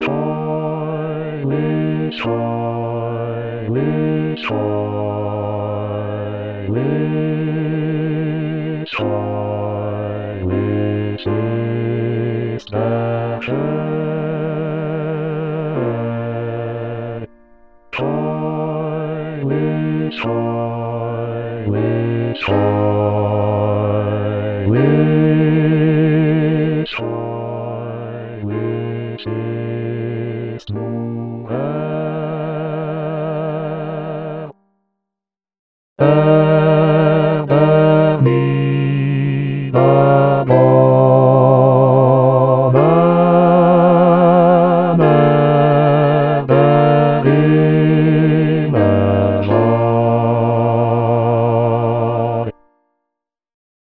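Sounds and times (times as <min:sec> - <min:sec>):
bass voice singing a sanctus: 0:00.0 - 0:17.3, 0:18.0 - 0:34.5, 0:36.0 - 0:52.5.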